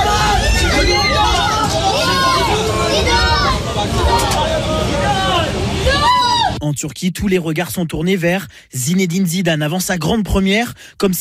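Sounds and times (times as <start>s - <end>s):
crowd of onlookers chattering and calling out at a hotel in Izmit Turkey: 0.0s - 6.6s
low rumble of the French national football team's bus arriving: 0.0s - 6.6s
speech: 6.8s - 11.2s.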